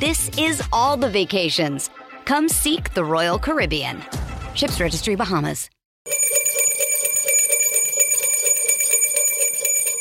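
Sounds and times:
speech: 0:00.0 - 0:05.8
bright metallic bell ringing rapidly: 0:06.1 - 0:10.0.

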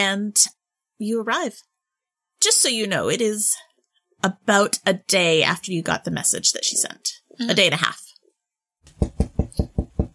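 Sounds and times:
speech: 0:00.0 - 0:01.7, 0:02.4 - 0:08.0
firm knocks on a wooden door: 0:08.9 - 0:10.1.

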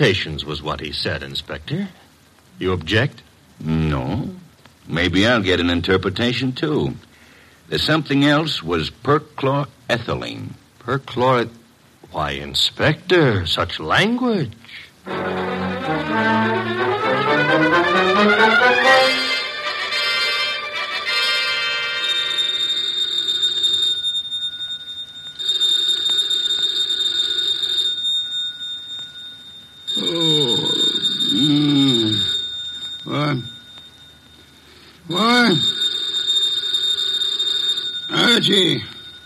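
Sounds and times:
speech: 0:00.0 - 0:02.0, 0:02.6 - 0:07.1, 0:07.7 - 0:16.6
musical flourish: 0:15.0 - 0:22.4
telephone bell ringing: 0:15.1 - 0:39.2.

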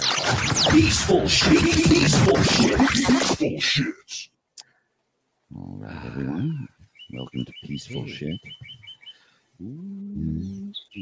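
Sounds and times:
speech: 0:00.3 - 0:04.3, 0:05.5 - 0:08.8, 0:09.6 - 0:11.0
birds chirping in high bright tweets: 0:04.6 - 0:11.0.

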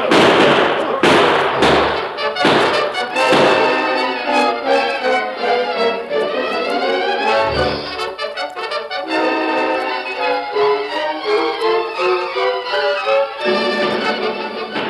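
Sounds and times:
gunfire from a sheriff's posse on horseback: 0:00.0 - 0:05.2
sustained noise: 0:00.0 - 0:14.8.

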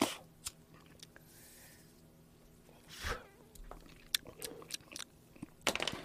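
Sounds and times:
low hum: 0:00.0 - 0:06.0
person chewing on a cigar: 0:03.6 - 0:05.6.

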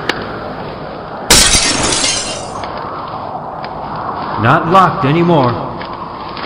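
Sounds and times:
glass shards tinkling and scattering: 0:01.3 - 0:02.6
window glass smashing: 0:01.3 - 0:02.6
speech: 0:04.4 - 0:05.6.

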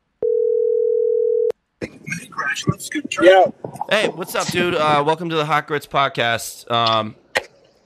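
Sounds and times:
telephone dial tone while placing call: 0:00.2 - 0:01.5
speech: 0:02.6 - 0:07.2.

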